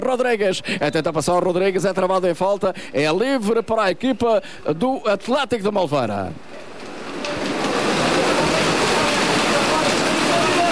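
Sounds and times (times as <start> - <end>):
speech: 0.1 - 6.7
heavy rain pouring down during a football match: 6.4 - 10.7.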